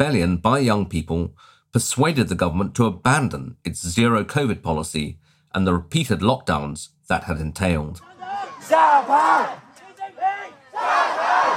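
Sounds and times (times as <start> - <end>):
speech: 0.0 - 9.6
crowd of protesters chanting in unison: 8.0 - 11.5.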